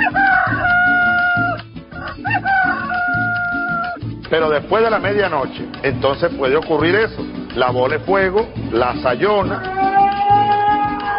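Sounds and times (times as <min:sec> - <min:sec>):
rooster crowing: 0:00.0 - 0:04.0, 0:09.4 - 0:11.1
speech: 0:04.3 - 0:09.9.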